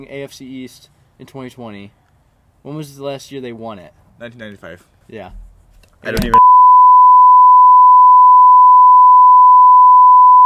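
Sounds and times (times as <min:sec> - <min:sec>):
speech: 0:00.0 - 0:02.0, 0:02.6 - 0:05.4, 0:06.0 - 0:06.4
steady pure electronic beep tone: 0:06.3 - 0:10.4.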